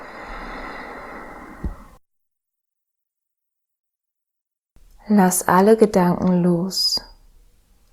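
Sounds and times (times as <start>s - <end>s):
deep breath in and out: 0.0s - 2.0s
speech: 5.1s - 7.1s.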